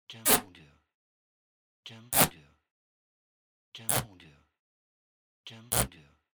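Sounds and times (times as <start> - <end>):
thick Scotch tape: 5.7 - 5.9.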